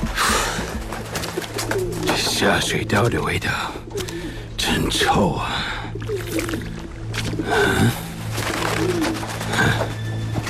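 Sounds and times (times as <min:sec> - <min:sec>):
pigeons cooing: 0:00.2 - 0:02.9, 0:05.8 - 0:10.4
speech: 0:02.4 - 0:03.8, 0:04.8 - 0:05.7, 0:07.5 - 0:08.0.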